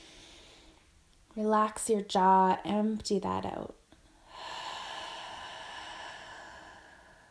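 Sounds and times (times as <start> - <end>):
deep inhale through the nose: 0.0 - 0.8, 4.2 - 7.2
speech: 1.4 - 3.8.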